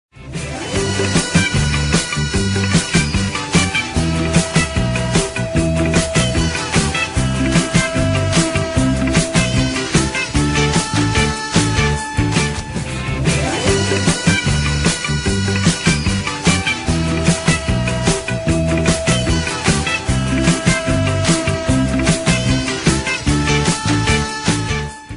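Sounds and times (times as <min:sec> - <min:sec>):
ringtone melody: 0:00.5 - 0:25.1.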